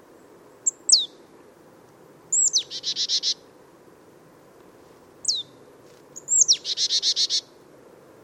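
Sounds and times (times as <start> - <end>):
marsh tit calling, Poecile palustris: 0.6 - 1.2, 2.3 - 3.4, 5.2 - 7.5.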